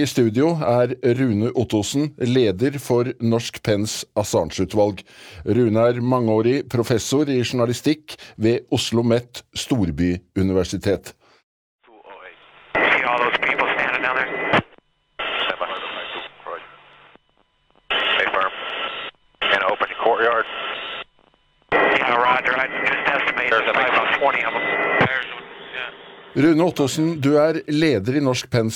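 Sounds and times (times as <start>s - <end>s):
speech: 0.0s - 11.2s, 26.4s - 28.7s
crackly band-limited military radio chatter between helicopter pilots: 11.9s - 17.2s, 17.9s - 21.1s, 21.7s - 27.4s.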